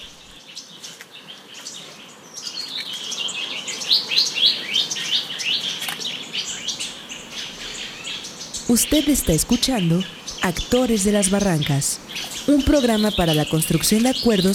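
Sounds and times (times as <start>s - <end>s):
melodious bird song with chirps and trills: 0.0s - 14.5s
speech: 8.7s - 14.5s.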